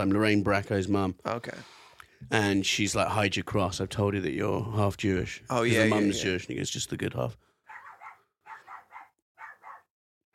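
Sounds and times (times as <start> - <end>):
speech: 0.0 - 7.5
dog barking: 7.7 - 10.3.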